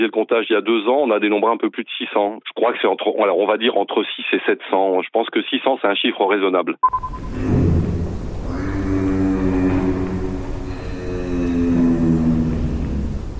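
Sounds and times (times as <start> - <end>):
speech: 0.0 - 7.8
giraffe snore-like humming: 7.3 - 13.3.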